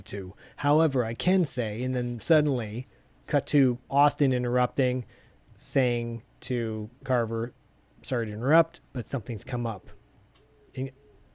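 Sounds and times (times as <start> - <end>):
speech: 0.0 - 10.0, 10.8 - 11.0
faint steady hum: 0.0 - 11.3
owl hooting outside: 9.8 - 11.3.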